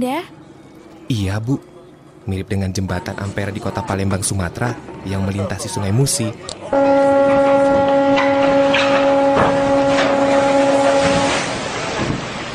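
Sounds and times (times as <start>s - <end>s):
speech: 0.0s - 0.4s, 1.1s - 1.7s, 2.3s - 7.6s
ship crossing the Madura Strait at night, tonal horn drone: 6.7s - 12.2s
broadband rumble: 6.8s - 11.5s.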